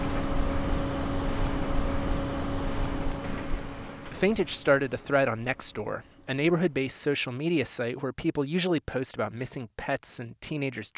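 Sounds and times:
loud steady droning hum near a highway interchange: 0.0 - 7.1
speech: 4.2 - 10.9.

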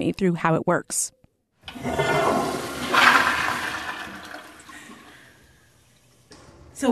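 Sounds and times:
speech: 0.0 - 2.6
toilet flushing with recycled water: 1.6 - 6.3.

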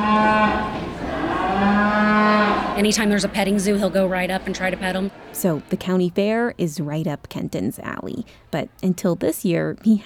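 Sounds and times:
cow mooing: 0.0 - 3.1
speech: 2.8 - 10.0.

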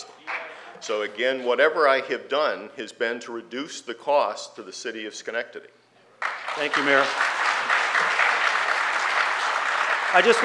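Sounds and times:
speech: 0.8 - 5.8, 6.6 - 7.4, 10.1 - 10.4
audience clapping at a candidates' forum: 6.2 - 10.4.

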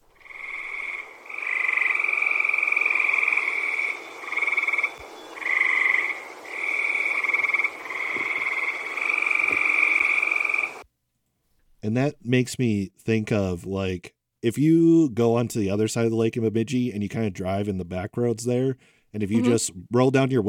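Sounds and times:
chorus of tree frogs calling in overlapping trills: 0.0 - 10.8
speech: 11.9 - 20.4.

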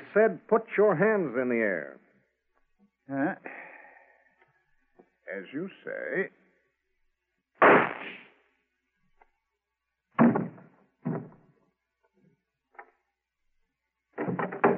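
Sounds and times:
speech: 0.2 - 2.1, 3.1 - 3.6, 5.3 - 6.4
single loud gunshot: 7.6 - 8.4, 10.2 - 11.4
soft scattered thumps and knocks: 10.2 - 11.4.

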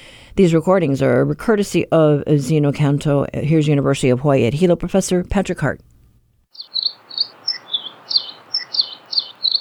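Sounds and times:
speech: 0.4 - 5.9
hiss: 5.8 - 9.5
Nihoa finch singing high chirping notes: 6.6 - 9.5.

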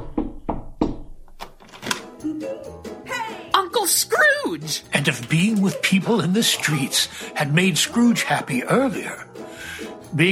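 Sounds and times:
firm knocks on the wooden door of a house: 0.0 - 1.2
speech: 2.2 - 10.3.

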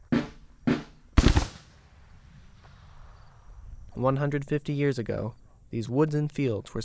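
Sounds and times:
period firearms fired by Civil War reenactors outdoors: 0.2 - 2.7
louder rough period firearm blast rumbling: 1.2 - 3.0
speech: 4.0 - 6.8.

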